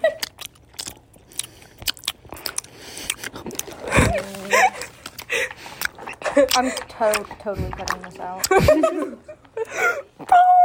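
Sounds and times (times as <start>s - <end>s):
crunchy chewing of food: 0.1s - 8.6s
wet mouth clicks: 0.2s - 3.9s, 5.0s - 8.6s
speech: 6.4s - 10.0s.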